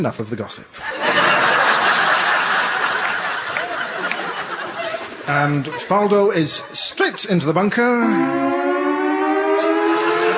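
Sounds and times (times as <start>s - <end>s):
speech: 0.0s - 1.3s, 5.3s - 8.7s
laughter: 0.8s - 7.4s
loud siren wailing at a golf tournament: 8.0s - 10.3s.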